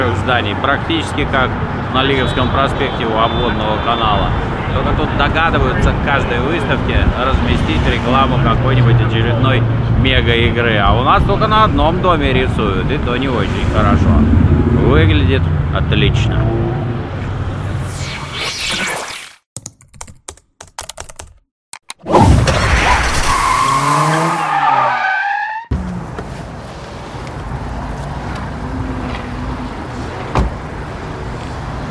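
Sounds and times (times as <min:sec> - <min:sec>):
road noise of a speeding car: 0:00.0 - 0:19.2, 0:22.2 - 0:31.9
speech: 0:00.2 - 0:16.8
new car engine revving through rising gears: 0:13.2 - 0:18.2.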